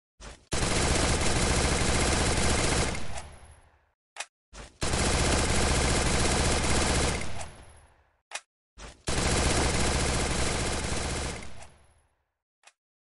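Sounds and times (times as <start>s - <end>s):
MP40 submachine gun firing: 0.5s - 3.4s, 4.8s - 7.6s, 9.1s - 11.8s.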